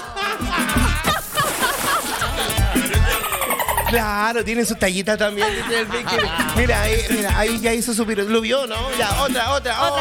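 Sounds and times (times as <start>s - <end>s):
laughter: 0.0s - 4.2s, 5.2s - 7.4s
water sloshing and splashing as a dolphin dives and surfaces: 1.1s - 2.5s
speech: 3.9s - 9.9s.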